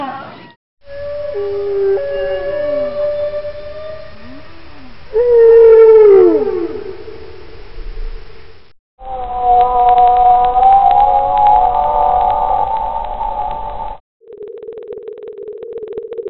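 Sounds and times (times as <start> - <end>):
Balaena whale moaning calls: 0.9 - 7.2, 9.0 - 13.4.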